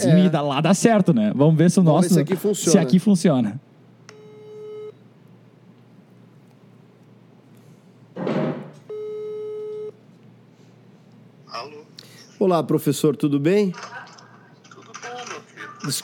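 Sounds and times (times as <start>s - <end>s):
speech: 0.0s - 3.7s, 12.4s - 14.1s, 15.8s - 16.0s
ringback tone of an outgoing telephone call: 4.2s - 5.0s, 8.9s - 10.0s.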